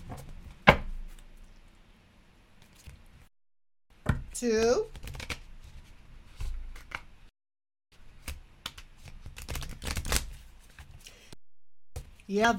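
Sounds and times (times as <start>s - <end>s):
speech: 4.4s - 5.0s, 12.3s - 12.5s
deck of cards being riffle shuffled: 4.8s - 7.1s, 8.2s - 11.0s.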